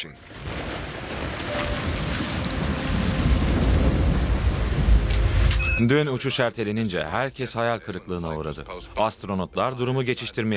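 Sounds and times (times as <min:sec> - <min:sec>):
speech: 0:00.0 - 0:00.5, 0:05.8 - 0:10.5
deep rolling thunder from a lightning storm in bad weather: 0:00.3 - 0:05.1
hiss of rain or wind: 0:00.9 - 0:05.1.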